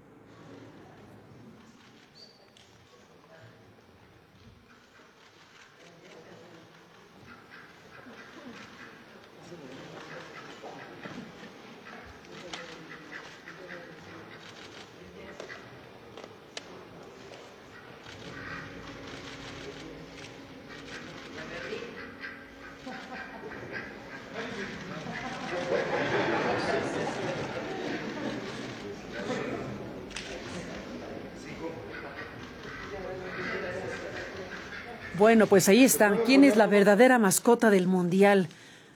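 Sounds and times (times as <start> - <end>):
crowd chatter and general bustle: 2.8 - 38.9
laughter: 20.7 - 35.2
duck quacking at the Palacio Nacional: 22.0 - 25.3
speech: 35.2 - 38.6.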